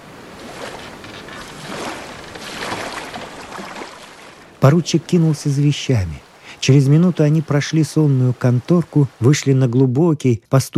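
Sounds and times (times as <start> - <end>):
water churning from a steamer's propeller while docking: 0.0 - 9.9
speech: 4.6 - 10.7.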